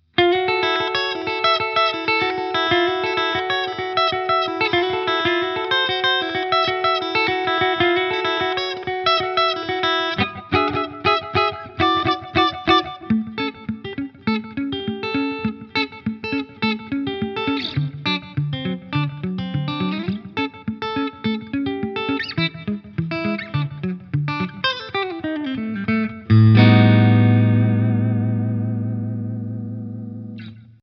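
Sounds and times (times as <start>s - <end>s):
Gretsch G5422TG Electromatic electric guitar, middle pickup, clean: 0.0s - 30.8s.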